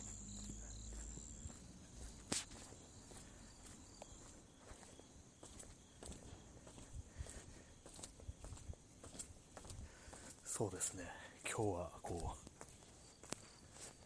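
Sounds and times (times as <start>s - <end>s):
high-pitched insect chirping outdoors: 0.0s - 14.0s
speech: 10.6s - 12.5s.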